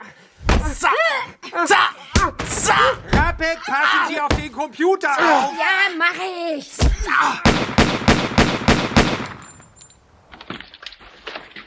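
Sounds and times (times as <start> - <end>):
speech: 0.7 - 8.3
gunshots during a tense confrontation: 6.8 - 9.5.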